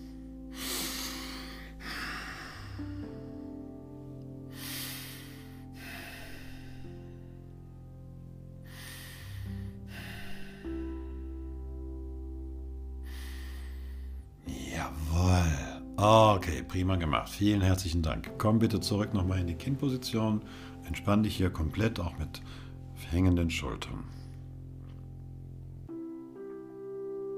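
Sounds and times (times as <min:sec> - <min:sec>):
slow deep breathing during a stretching exercise: 0:00.0 - 0:14.6, 0:20.4 - 0:20.9, 0:22.4 - 0:23.0
sustained musical drone: 0:00.0 - 0:26.0
speech: 0:16.0 - 0:24.2.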